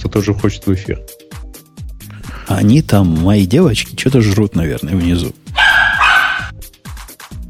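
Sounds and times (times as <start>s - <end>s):
speech: 0.2s - 1.2s, 2.5s - 5.4s
dog barking: 5.5s - 6.6s.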